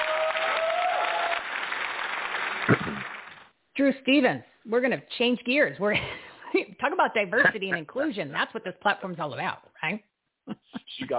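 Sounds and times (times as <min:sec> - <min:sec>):
audience applause: 0:00.0 - 0:03.5
speech: 0:03.8 - 0:10.1.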